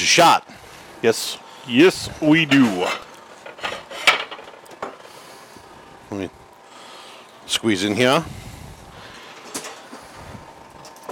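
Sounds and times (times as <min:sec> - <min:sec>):
speech: 0:00.0 - 0:03.1, 0:06.1 - 0:06.4, 0:07.5 - 0:08.4
metal kitchen utensils clinking as an angled spatula is pulled out: 0:02.3 - 0:04.7.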